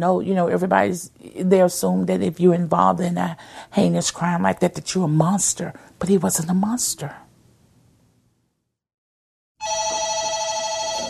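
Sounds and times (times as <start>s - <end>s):
speech: 0.0s - 7.3s
telephone ringing with electronic trill for call from front desk: 9.6s - 11.0s.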